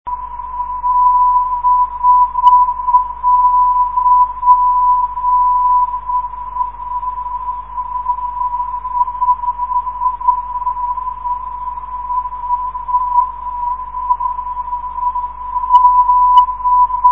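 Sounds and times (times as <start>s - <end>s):
985 kHz non-directional radio beacon signal: 0.1s - 17.1s.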